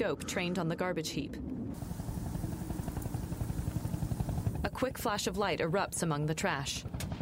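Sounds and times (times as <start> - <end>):
speech: 0.0 - 1.9, 4.6 - 7.0
approaching helicopters rotor thumping: 1.8 - 7.1.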